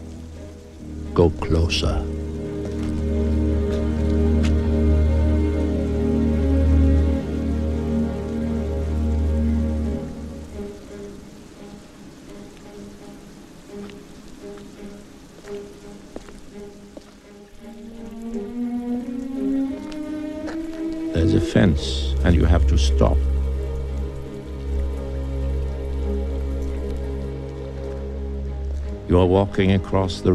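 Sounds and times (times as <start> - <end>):
rain beating against a large metal drum: 0.0 - 30.3
speech: 1.2 - 2.2, 29.2 - 30.3.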